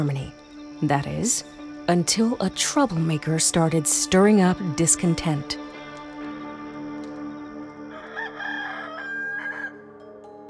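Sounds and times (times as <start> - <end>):
speech: 0.0 - 5.8
rooster crowing at dawn: 7.9 - 9.9.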